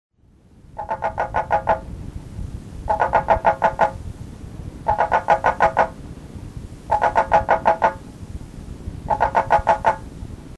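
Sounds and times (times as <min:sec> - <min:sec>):
Dyscophus guineti calling: 0:00.8 - 0:01.9, 0:02.9 - 0:04.0, 0:04.9 - 0:06.0, 0:06.9 - 0:08.0, 0:09.1 - 0:10.1.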